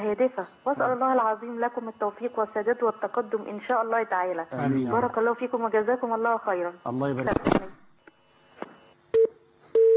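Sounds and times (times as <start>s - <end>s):
speech: 0.1s - 7.8s
phone-line tones marking an incoming call on a television call-in program: 9.2s - 9.9s.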